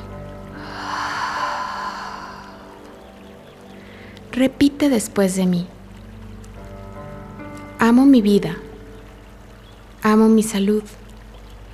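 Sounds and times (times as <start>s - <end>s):
slow airy breath during a guided healing meditation: 0.5s - 3.0s, 3.7s - 4.2s
speech: 4.4s - 5.8s, 8.0s - 8.6s, 10.0s - 11.0s.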